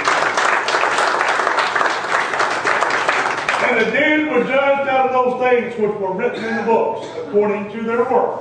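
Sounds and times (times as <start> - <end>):
crowd clapping during a sermon: 0.0 - 3.9
speech: 3.7 - 8.4.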